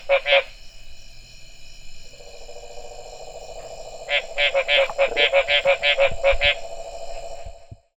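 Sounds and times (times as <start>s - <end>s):
Mexican treefrog Smilisca baudinii calling: 0.0s - 0.6s, 2.1s - 7.7s
constant high-pitched drone: 2.0s - 7.9s.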